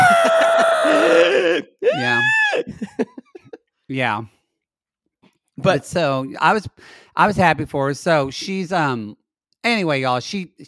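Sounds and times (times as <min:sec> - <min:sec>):
laughter: 0:00.0 - 0:01.1, 0:01.9 - 0:03.6
person imitating a prehistoric bird scream: 0:00.0 - 0:02.7
speech: 0:03.9 - 0:04.4, 0:05.6 - 0:10.6.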